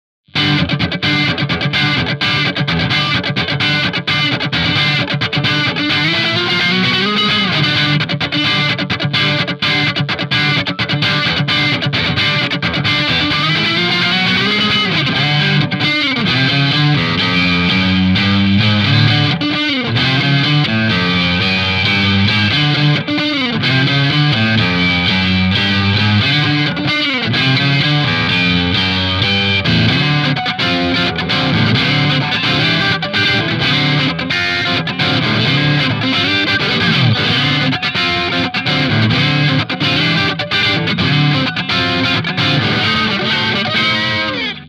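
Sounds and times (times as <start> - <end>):
funk music for amp comparison: 0.3 - 44.6.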